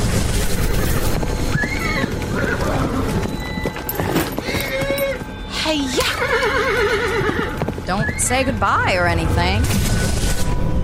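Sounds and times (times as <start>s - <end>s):
mare hooves clip-clopping: 0.3s - 9.2s
mare whinny-like call: 1.5s - 8.4s
speech: 7.9s - 10.2s.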